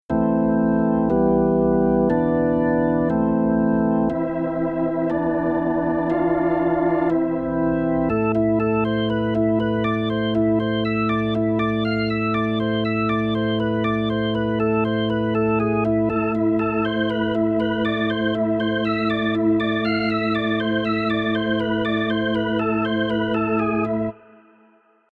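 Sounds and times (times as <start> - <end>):
Hammond organ: 0.1 - 24.2.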